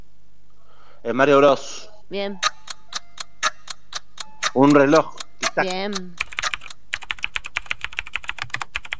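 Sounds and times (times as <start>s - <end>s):
speech: 1.1s - 2.5s, 4.5s - 6.2s
typing on a computer keyboard: 5.7s - 8.9s.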